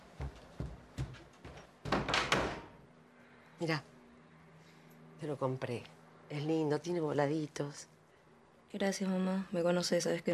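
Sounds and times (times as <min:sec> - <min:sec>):
footsteps thudding across the floor: 0:00.0 - 0:02.1
speech: 0:03.6 - 0:03.9, 0:05.2 - 0:07.9, 0:08.7 - 0:10.3.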